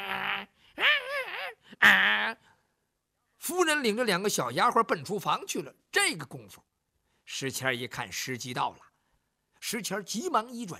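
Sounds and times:
person's voice imitating a dog whimpering and straining: 0.0s - 2.4s
speech: 3.6s - 6.7s, 7.3s - 8.9s, 9.6s - 10.7s.

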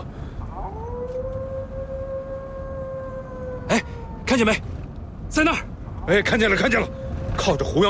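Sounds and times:
low rumbling background: 0.0s - 7.8s
wolf howling in a desert poplar grove: 0.5s - 4.4s, 6.3s - 7.8s
speech: 4.4s - 7.8s.

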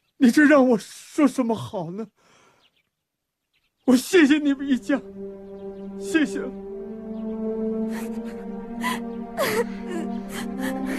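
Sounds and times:
speech: 0.2s - 2.4s, 3.9s - 6.7s, 7.9s - 10.8s
child crying in gasping sobs: 7.9s - 10.9s.

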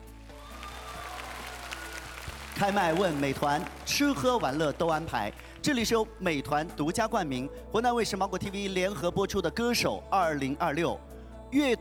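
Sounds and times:
sustained music: 0.0s - 11.7s
audience applause at a singing competition: 0.2s - 5.6s
speech: 2.6s - 11.7s.

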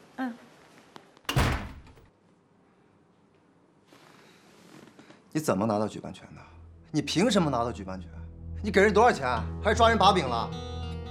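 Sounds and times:
door slamming shut with a heavy thud: 1.3s - 2.1s
speech: 5.4s - 10.7s.

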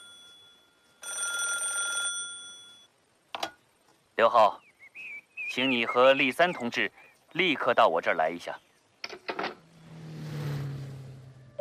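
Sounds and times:
telephone ringing with electronic trill: 0.0s - 2.9s
speech: 4.2s - 4.6s, 5.5s - 8.7s.

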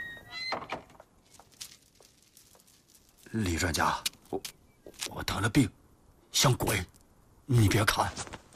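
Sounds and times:
door being opened: 0.3s - 1.1s
speech: 3.3s - 4.6s, 5.2s - 6.9s, 7.5s - 8.3s.

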